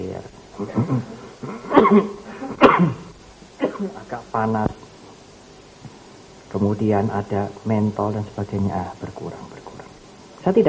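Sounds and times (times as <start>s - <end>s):
speech: 0.2s - 2.2s, 4.4s - 4.8s, 6.5s - 9.6s, 10.4s - 10.6s
harsh coughs: 0.8s - 4.0s.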